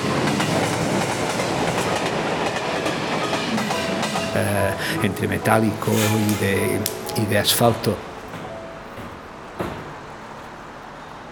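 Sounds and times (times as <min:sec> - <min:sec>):
wheels clacking on rails: 0:00.0 - 0:10.9
train rolling over rail tracks: 0:00.0 - 0:11.2
speech: 0:04.4 - 0:08.1.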